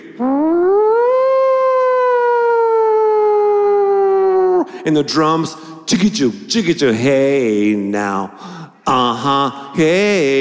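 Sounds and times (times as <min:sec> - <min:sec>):
siren wailing opening a funk song: 0:00.1 - 0:04.7
speech: 0:04.8 - 0:10.4.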